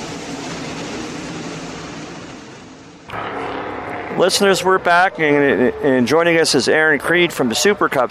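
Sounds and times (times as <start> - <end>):
race car engines circling a track during qualifying in Midvale Ohio: 3.1 - 8.0
speech: 4.2 - 8.0.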